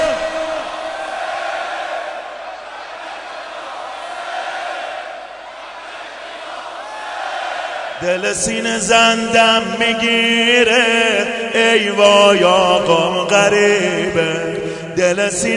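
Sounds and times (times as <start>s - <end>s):
large crowd shouting a religious chant in unison: 0.0s - 8.0s
speech: 8.0s - 15.5s.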